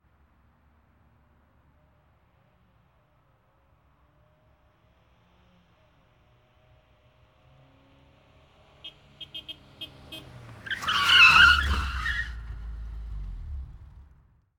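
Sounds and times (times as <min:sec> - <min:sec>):
sharp braking: 0:10.6 - 0:13.6.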